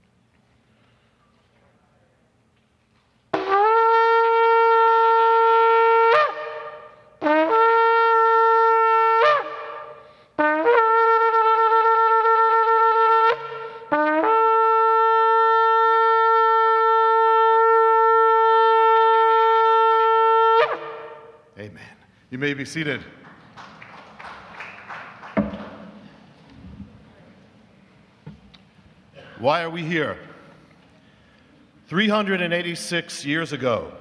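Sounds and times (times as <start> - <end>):
shofar blown at a sacred prayer gathering: 3.3 - 21.6
speech: 22.4 - 23.2, 29.4 - 30.3, 31.9 - 33.9.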